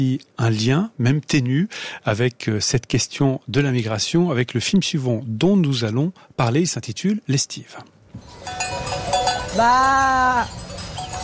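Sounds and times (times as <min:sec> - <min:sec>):
speech: 0:00.0 - 0:08.8, 0:09.5 - 0:10.7
person's voice imitating a ewe calling its lamb: 0:09.6 - 0:10.5.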